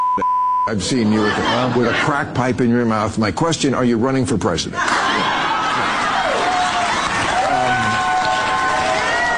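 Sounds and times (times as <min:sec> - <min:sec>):
speech: 0:00.1 - 0:05.4
large crowd cheering and murmuring: 0:00.9 - 0:02.4, 0:04.8 - 0:09.3
whoops from the crowd: 0:06.1 - 0:09.3.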